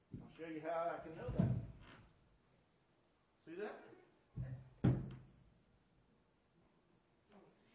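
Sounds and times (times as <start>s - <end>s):
speech: 0.4s - 1.7s, 3.5s - 4.0s
chair being lifted up with a solid wooden clunk: 1.2s - 2.0s, 4.4s - 5.3s.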